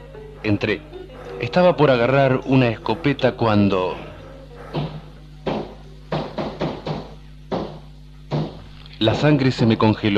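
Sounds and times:
low steady hum: 0.0s - 10.1s
speech: 0.4s - 4.1s, 9.0s - 10.1s
sharp knocking blows: 4.7s - 8.6s.

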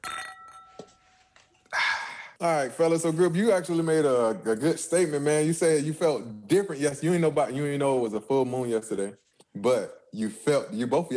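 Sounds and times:
glasses clinking in a toast: 0.0s - 1.2s
speech: 2.4s - 11.1s.

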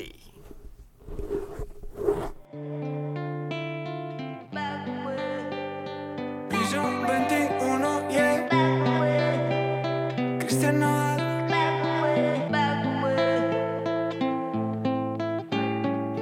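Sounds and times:
scratchy rustle: 0.3s - 2.5s
loud instrumental song intro with sustained chords and melody: 2.5s - 16.2s.

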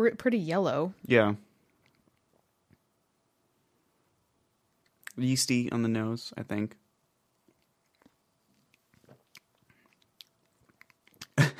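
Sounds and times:
speech: 0.0s - 1.5s, 5.2s - 6.8s
soft wet mouth clicks and sips: 7.4s - 11.4s.

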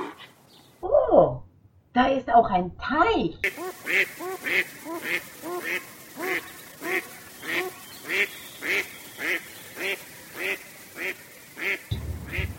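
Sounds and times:
speech: 2.0s - 7.1s
ducks quacking on a countryside farm pond: 3.4s - 12.5s
low rumble: 11.9s - 12.5s.

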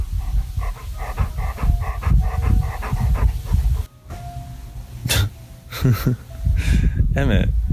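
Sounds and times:
dog panting heavily: 0.0s - 3.9s
speech: 5.8s - 7.7s.

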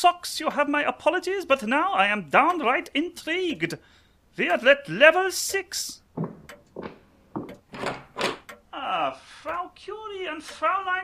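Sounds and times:
speech: 0.0s - 7.0s, 8.9s - 11.0s
hollow knocks on a wooden door: 6.2s - 8.4s.

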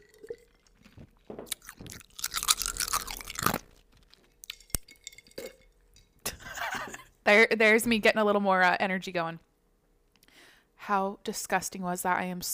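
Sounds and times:
crunchy wet mouth sounds: 0.0s - 3.8s
sipping an iced coffee: 0.0s - 5.6s
speech: 7.3s - 9.5s, 10.9s - 12.5s.

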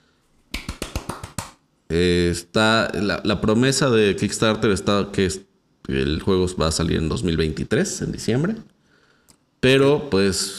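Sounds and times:
hand claps: 0.5s - 1.6s
speech: 1.9s - 8.8s, 9.6s - 10.5s.

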